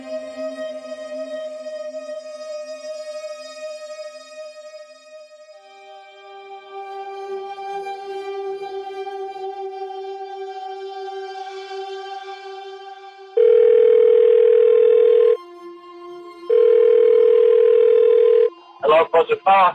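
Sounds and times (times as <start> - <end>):
telephone dial tone: 13.4 - 15.4, 16.6 - 18.5
person speaking on the telephone: 18.8 - 19.7.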